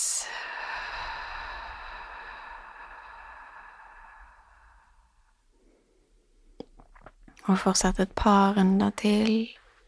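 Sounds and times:
person exhaling slowly during a guided breathing exercise: 0.0 - 6.2
speech: 7.5 - 9.6.

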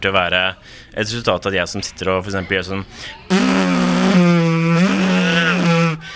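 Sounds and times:
speech: 0.0 - 4.3
person vocally imitating a revving engine: 3.3 - 6.1.

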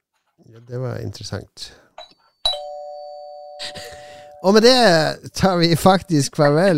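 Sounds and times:
speech: 0.4 - 1.8, 4.4 - 6.7
old doorbell ringing: 2.0 - 4.6.

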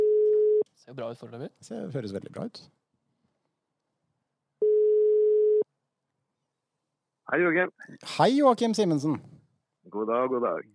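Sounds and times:
steady mid-pitched telephone ringing tone while placing a call: 0.0 - 0.6, 4.6 - 5.6
speech: 0.9 - 2.8, 7.3 - 10.7.

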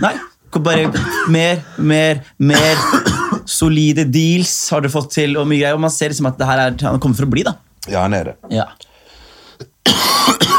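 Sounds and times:
loud harsh coughing: 0.0 - 1.5, 2.5 - 3.5, 9.6 - 10.5
speech: 0.0 - 8.9, 9.6 - 10.5.

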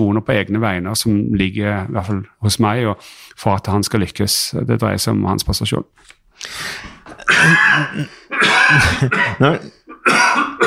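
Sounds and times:
speech: 0.0 - 10.4
person gasping between coughs: 6.4 - 9.9
harsh coughing fit: 7.0 - 10.6.

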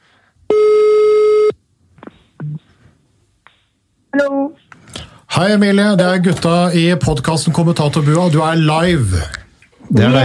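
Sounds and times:
ringback tone from an outgoing phone call: 0.5 - 1.5
speech: 5.4 - 10.2.

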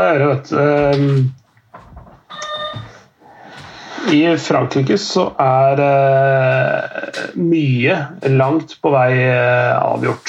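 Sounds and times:
speech: 0.0 - 1.4, 4.0 - 10.2
door scraping and creaking open: 1.0 - 3.1.

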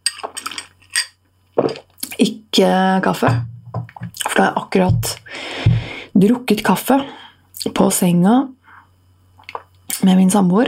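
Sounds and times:
glass of soda clinking and rattling: 0.0 - 1.8
speech: 2.2 - 3.5, 4.4 - 5.3, 6.2 - 8.6, 10.0 - 10.6.

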